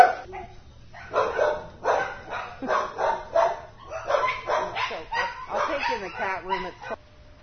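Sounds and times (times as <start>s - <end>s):
dogs barking and yipping in animal shelter pens: 0.0s - 7.0s
low steady hum: 0.0s - 7.4s.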